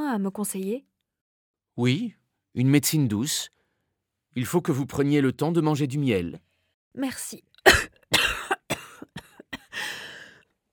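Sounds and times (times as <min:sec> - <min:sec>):
speech: 0:00.1 - 0:00.9, 0:01.8 - 0:03.6, 0:04.4 - 0:08.2
harsh fit of rough raspy coughing: 0:07.7 - 0:09.8.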